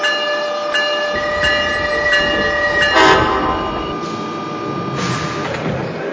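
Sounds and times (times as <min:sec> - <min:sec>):
commuter train rolling into a station platform: 0:00.0 - 0:06.1
commuter train rhythmic clanks: 0:00.8 - 0:04.4
commuter train high tonal whines: 0:01.1 - 0:05.5.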